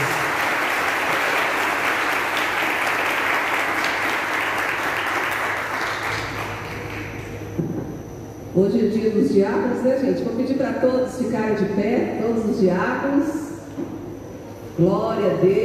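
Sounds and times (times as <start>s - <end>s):
large church audience clapping: 0.0s - 7.3s
speech: 8.6s - 13.5s, 14.8s - 15.6s.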